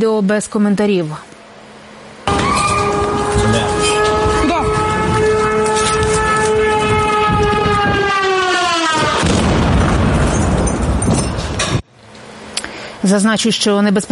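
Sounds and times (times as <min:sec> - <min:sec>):
speech: 0:00.0 - 0:01.3, 0:13.0 - 0:14.0
Russian strike drone engine whine passing overhead: 0:01.8 - 0:11.0
powerful explosion with roaring crackling blast noise: 0:09.0 - 0:11.6.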